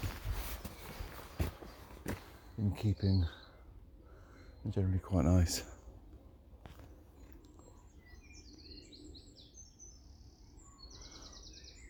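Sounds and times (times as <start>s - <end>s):
birds chirping and trilling in woodland: 0.0s - 11.8s
speech: 2.6s - 3.4s, 4.6s - 5.7s.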